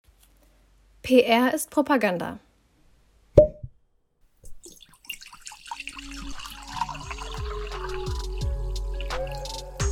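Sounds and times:
speech: 1.1s - 2.5s
cork popping: 3.4s - 3.7s, 4.4s - 8.4s, 9.0s - 9.8s
prosecco pouring into a glass with bubbling gurgle and fizz: 4.5s - 9.8s.

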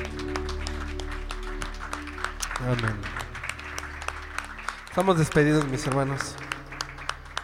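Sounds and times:
audience applauding: 0.0s - 7.4s
speech: 2.6s - 3.2s, 5.0s - 6.5s.

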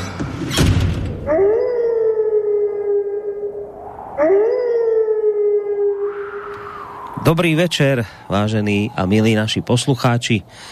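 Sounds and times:
wolf howling: 1.2s - 7.3s
speech: 7.3s - 10.7s.

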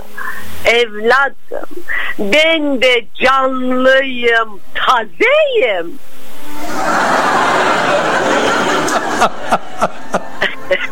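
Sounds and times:
speech: 0.2s - 8.2s, 8.9s - 10.9s
canned audience laughter sound effect: 6.6s - 10.9s.

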